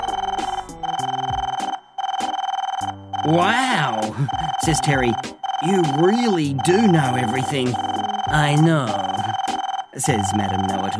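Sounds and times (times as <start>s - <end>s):
video phone ringing: 0.0s - 10.9s
speech: 3.2s - 9.1s, 10.0s - 10.9s.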